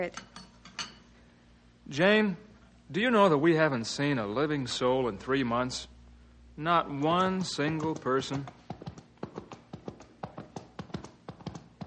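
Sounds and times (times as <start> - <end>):
speech: 0.0 - 0.4, 1.9 - 5.9, 6.6 - 8.6
horse hooves clip-clopping carrying a rider: 7.0 - 11.8.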